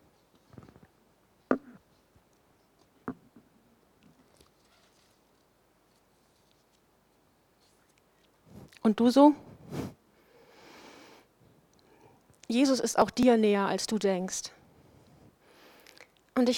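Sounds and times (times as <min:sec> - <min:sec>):
paper sheet rustling and crinkling as it is fumbled and turned: 0:04.2 - 0:06.9
speech: 0:08.8 - 0:09.4, 0:12.6 - 0:14.6, 0:16.4 - 0:16.5.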